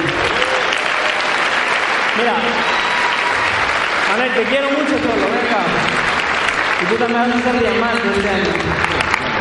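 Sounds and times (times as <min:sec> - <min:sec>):
dense audience applause: 0:00.0 - 0:09.4
speech: 0:02.2 - 0:02.7, 0:04.1 - 0:06.1, 0:06.8 - 0:09.2.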